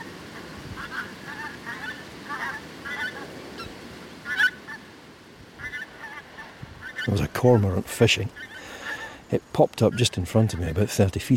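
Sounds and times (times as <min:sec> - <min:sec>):
skeins of geese honking overhead: 0:00.0 - 0:04.9, 0:05.6 - 0:09.2
speech: 0:07.1 - 0:08.5, 0:09.3 - 0:11.3.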